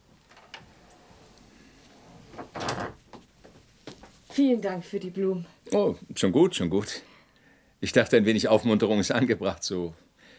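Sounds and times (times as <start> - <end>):
faint knocks and scrapes: 0.1 - 4.4
door swinging shut with a solid thud: 2.3 - 3.1
speech: 4.4 - 7.1, 7.8 - 10.0.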